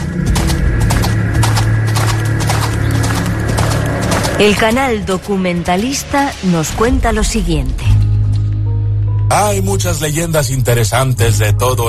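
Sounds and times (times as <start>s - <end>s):
horse hooves clip-clopping: 0.0s - 6.8s
low rumbling drone: 0.0s - 11.1s
speech: 4.4s - 8.0s, 9.3s - 11.8s.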